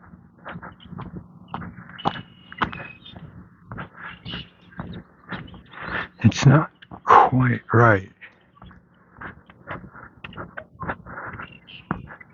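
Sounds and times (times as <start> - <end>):
low steady hum: 0.0 - 12.3
starling mimicking red-winged blackbird call: 2.0 - 3.2, 4.0 - 4.8
speech: 6.4 - 6.7, 7.3 - 8.2.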